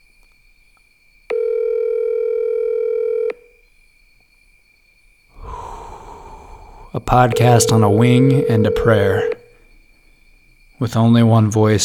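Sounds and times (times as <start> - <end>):
phone line ring tone: 1.3 - 3.5, 7.1 - 9.5
soft breathy rush: 5.4 - 8.1
speech: 7.1 - 9.4, 10.8 - 11.8.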